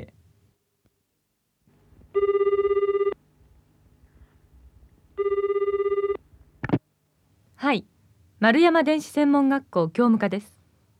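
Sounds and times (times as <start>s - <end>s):
telephone ringback tone: 2.2s - 3.2s, 5.2s - 6.2s
speech: 7.6s - 10.6s.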